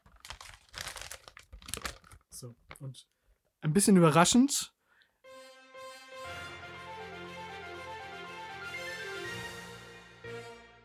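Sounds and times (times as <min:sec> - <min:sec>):
paper envelope being opened at a film award announcement: 0:00.0 - 0:02.3
speech: 0:02.4 - 0:04.8.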